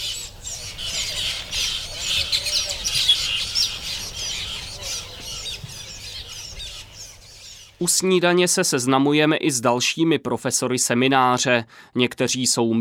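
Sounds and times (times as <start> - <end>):
chorus of birds calling from large nests on palm trunks: 0.0 - 7.9
speech: 7.8 - 12.8.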